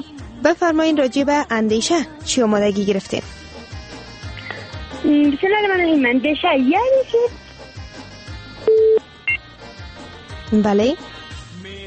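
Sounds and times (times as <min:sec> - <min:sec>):
speech: 0:00.0 - 0:03.4, 0:05.0 - 0:07.4, 0:10.5 - 0:11.1
electronic telephone tones as a phone call is cut off: 0:08.7 - 0:09.4.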